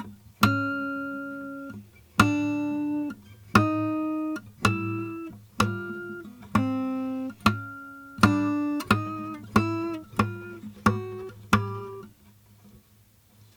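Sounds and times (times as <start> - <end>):
pinch harmonics: 0.0 - 12.1.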